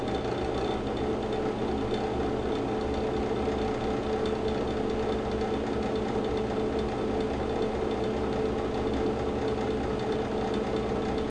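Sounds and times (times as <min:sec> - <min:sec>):
fan whirring: 0:00.0 - 0:11.2.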